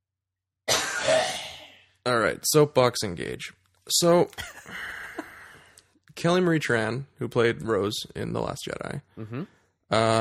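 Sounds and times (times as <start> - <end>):
person coughing: 0.7 - 1.7
speech: 2.0 - 4.9, 6.2 - 10.2.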